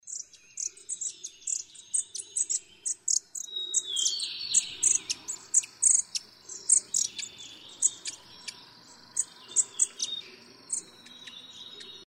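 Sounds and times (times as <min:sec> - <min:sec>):
black-throated bushtit calling: 0:00.0 - 0:12.0.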